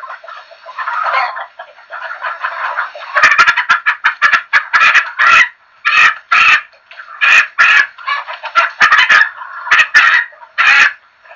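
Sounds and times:
chicken clucking and cackling: 0:00.0 - 0:11.3.

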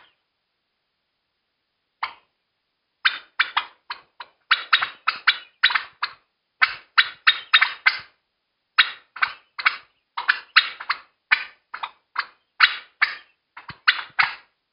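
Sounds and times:
turkey giving sharp harsh alarm notes: 0:02.0 - 0:02.3, 0:03.0 - 0:08.2, 0:08.8 - 0:14.5.

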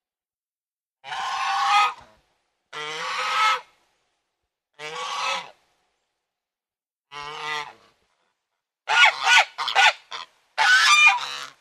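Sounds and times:
domestic goose honking: 0:01.0 - 0:02.0, 0:02.8 - 0:03.7, 0:04.8 - 0:05.6, 0:07.1 - 0:07.8, 0:08.9 - 0:11.5.

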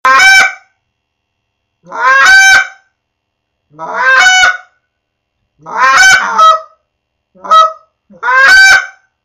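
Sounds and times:
Canada goose greeting call: 0:00.1 - 0:00.6, 0:01.9 - 0:02.8, 0:03.8 - 0:04.7, 0:05.6 - 0:06.8, 0:07.4 - 0:09.0.

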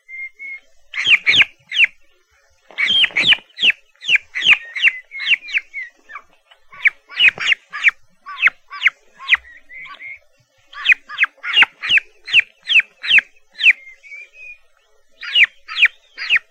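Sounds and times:
turkey chicks giving shrill high peeps: 0:00.0 - 0:16.4.

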